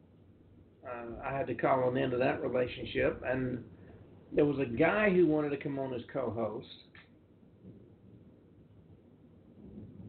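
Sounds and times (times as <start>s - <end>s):
speech: 0.8s - 7.0s
thunder rumbling from a storm: 0.9s - 5.4s.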